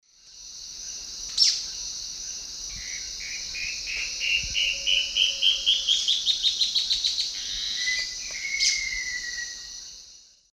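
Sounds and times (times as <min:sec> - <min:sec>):
Thamnomanes ardesiacus call and song: 0:02.9 - 0:09.7.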